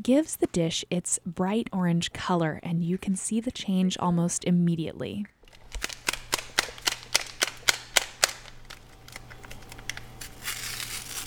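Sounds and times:
speech: 0:00.0 - 0:05.4
foil packet of sazon seasoning tearing open: 0:05.6 - 0:11.2
foil packet rustling: 0:08.5 - 0:11.2.

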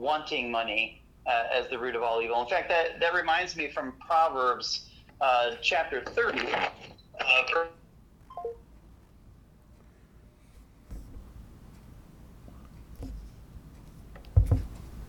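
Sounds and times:
speech: 0:00.0 - 0:07.8
brief beep: 0:08.3 - 0:08.6
electronic telephone tones as a phone call is cut off: 0:08.3 - 0:08.6
low thump: 0:14.4 - 0:14.8.

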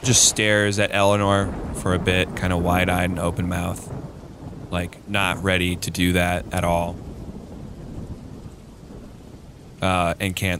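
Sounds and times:
speech: 0:00.0 - 0:04.0, 0:04.7 - 0:07.1, 0:09.8 - 0:10.5
low thundery undertone: 0:00.0 - 0:09.1
heavy rain drumming on the roof of a tall church: 0:00.0 - 0:10.5.

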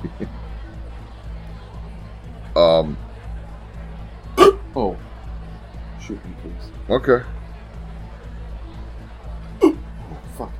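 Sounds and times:
low murmur: 0:00.0 - 0:10.5
speech: 0:02.6 - 0:03.0, 0:06.1 - 0:07.4, 0:10.4 - 0:10.5
sharp hiccup: 0:04.4 - 0:04.6, 0:09.6 - 0:09.8.

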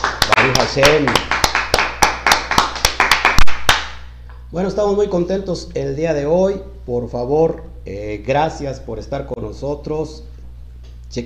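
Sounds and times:
audience applause welcoming a guest: 0:00.0 - 0:03.9
speech: 0:00.7 - 0:01.3, 0:04.5 - 0:10.3.

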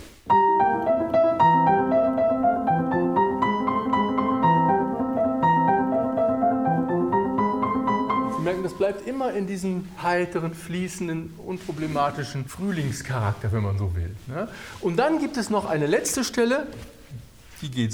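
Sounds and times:
live piano playing a cheerful classical theme: 0:00.3 - 0:09.2
speech: 0:08.9 - 0:17.0, 0:17.6 - 0:17.9.

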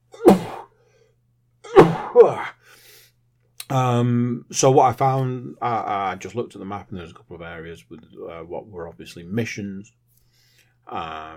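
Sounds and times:
person sneezing: 0:00.1 - 0:00.7, 0:01.6 - 0:02.5
speech: 0:02.1 - 0:02.6, 0:03.7 - 0:10.0, 0:10.9 - 0:11.3.

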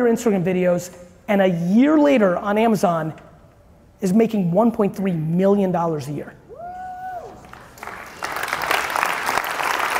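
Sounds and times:
speech: 0:00.0 - 0:03.2, 0:04.0 - 0:06.4
large crowd applauding: 0:07.3 - 0:09.9.

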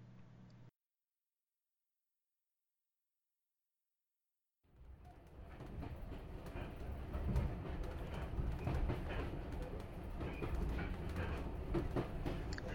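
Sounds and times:
steam train coaches running on rails heard from inside the carriage: 0:04.8 - 0:12.7.

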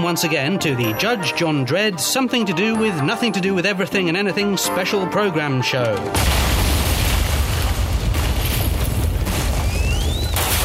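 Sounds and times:
speech: 0:00.0 - 0:06.7
cartoon explosion sound effect with roaring rumble: 0:06.2 - 0:10.6
thin rising whistle: 0:09.6 - 0:10.4.

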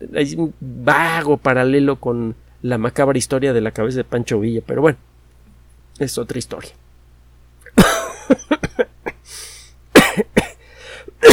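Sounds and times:
speech: 0:00.0 - 0:05.1, 0:06.0 - 0:06.8
person coughing: 0:07.7 - 0:09.2, 0:10.0 - 0:10.6, 0:11.2 - 0:11.3.

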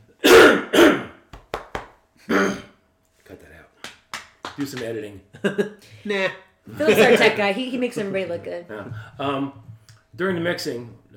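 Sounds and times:
person coughing: 0:00.2 - 0:01.2, 0:02.3 - 0:02.8
speech: 0:04.6 - 0:09.6, 0:10.2 - 0:11.1.

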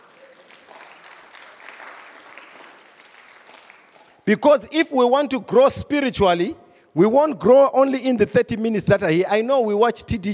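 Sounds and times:
crowd clapping hands in steady applause: 0:00.0 - 0:04.3
speech: 0:04.3 - 0:10.3.

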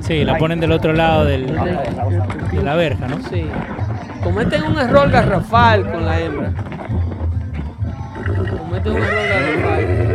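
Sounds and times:
speech: 0:00.1 - 0:06.9, 0:08.8 - 0:10.0
horse whinnying: 0:03.6 - 0:07.2, 0:07.9 - 0:10.1.

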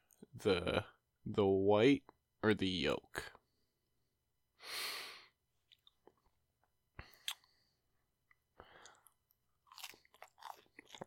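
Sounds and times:
speech: 0:00.4 - 0:03.4
quiet clicks between chews: 0:07.0 - 0:07.5
crisp bites and crunchy chewing of a sandwich: 0:08.8 - 0:11.0.

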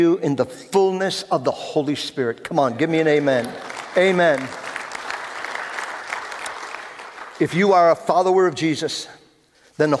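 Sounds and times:
speech: 0:00.0 - 0:04.6, 0:07.4 - 0:09.2, 0:09.8 - 0:09.9
audience applause: 0:03.0 - 0:07.5.

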